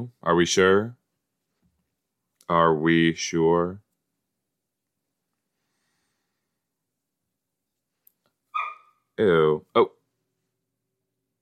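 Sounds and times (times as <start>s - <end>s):
speech: 0.0s - 1.0s, 2.5s - 3.8s, 9.2s - 10.0s
dog barking: 8.6s - 9.0s.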